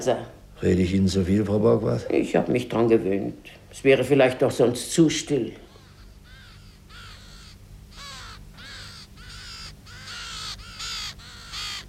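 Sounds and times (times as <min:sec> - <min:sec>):
speech: 0:00.0 - 0:05.6
two ravens cawing: 0:05.6 - 0:11.8.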